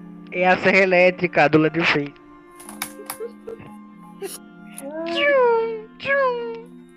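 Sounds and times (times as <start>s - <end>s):
speech: 0.3s - 2.2s, 4.2s - 4.5s
cats meowing on a roof: 4.8s - 5.7s.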